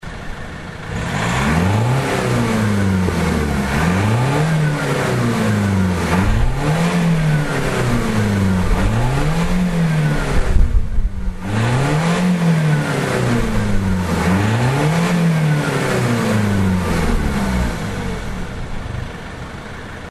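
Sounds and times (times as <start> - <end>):
Mazda2 Demio DJ muffler exhaust: 0.0 - 20.0.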